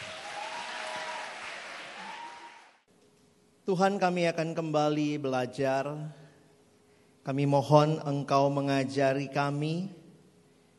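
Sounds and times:
audience applause welcoming a speaker: 0.0s - 2.9s
speech: 3.7s - 6.2s, 7.2s - 10.0s.

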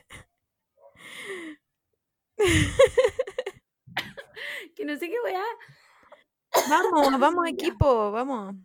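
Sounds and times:
speech: 2.4s - 3.1s, 4.8s - 5.8s, 6.7s - 8.6s
coughing fit: 6.5s - 7.4s.

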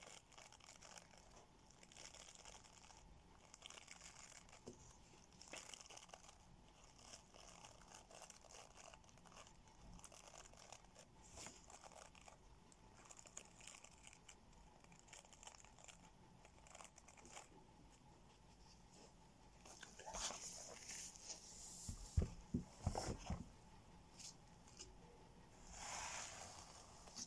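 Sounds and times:
faint steady hum: 0.0s - 27.2s
hair being brushed: 19.7s - 23.3s, 25.6s - 27.2s.

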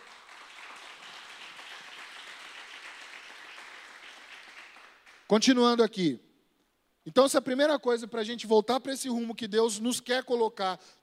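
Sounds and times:
church audience applause: 0.0s - 5.3s
speech: 5.3s - 6.2s, 7.1s - 11.0s.

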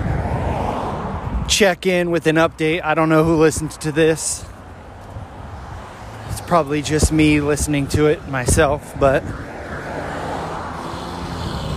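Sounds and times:
loud cars passing on a road: 0.0s - 11.7s
speech: 1.5s - 4.5s, 6.4s - 9.5s.

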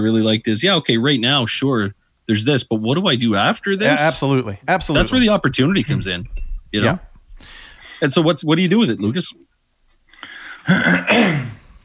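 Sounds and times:
speech: 0.0s - 9.5s, 10.2s - 11.6s
faint intake of breath: 7.3s - 8.0s, 10.2s - 10.7s
person clearing throat: 10.6s - 11.8s.

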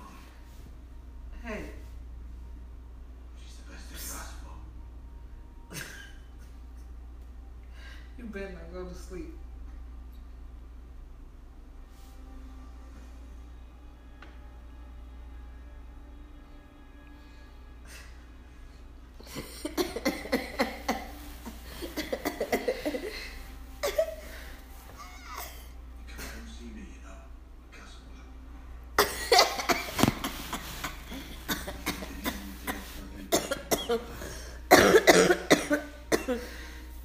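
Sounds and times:
speech: 8.4s - 9.4s
person coughing: 19.2s - 24.4s, 29.0s - 36.6s.

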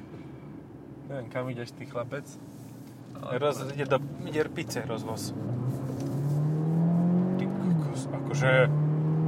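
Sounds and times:
speech: 1.1s - 6.1s, 8.0s - 8.8s
300-horsepower car in sport mode accelerating hard through a corner: 4.8s - 9.2s.

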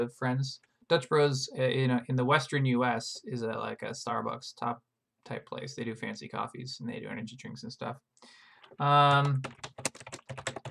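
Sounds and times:
speech: 0.0s - 9.9s
typing on a computer keyboard: 8.6s - 10.6s.

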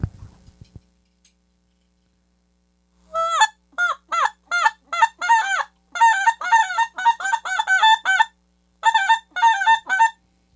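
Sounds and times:
goose call blown by a learner: 3.1s - 10.2s.

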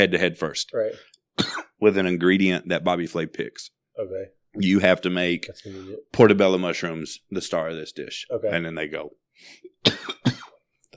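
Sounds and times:
speech: 0.0s - 10.4s
person coughing: 1.4s - 1.8s, 9.8s - 10.6s.

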